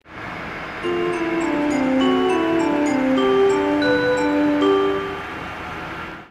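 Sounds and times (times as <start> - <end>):
TX2000 chime on the Tsukuba Express: 0.8 - 5.4.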